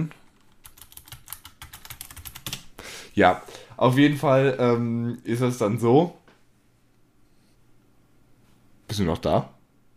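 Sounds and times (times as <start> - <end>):
speech: 0.0 - 0.2, 3.2 - 6.2, 9.0 - 9.6
typing a message on a computer keyboard: 0.4 - 2.7.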